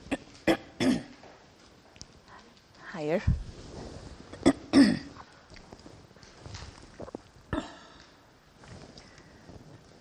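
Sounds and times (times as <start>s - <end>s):
person clearing throat: 0.1s - 1.1s, 4.4s - 5.2s, 7.5s - 7.9s
person coughing: 0.5s - 1.1s, 4.4s - 5.1s, 7.6s - 8.0s
speech: 3.0s - 3.4s.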